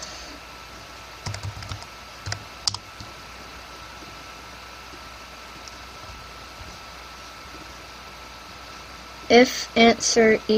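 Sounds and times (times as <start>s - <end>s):
low hiss: 0.0s - 10.5s
typing on a computer keyboard: 1.2s - 3.1s
speech: 9.3s - 10.5s.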